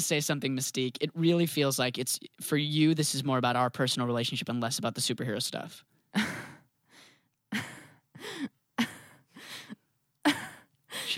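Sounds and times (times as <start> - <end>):
speech: 0.0 - 6.3
woman on a phone call gasping: 6.2 - 11.1.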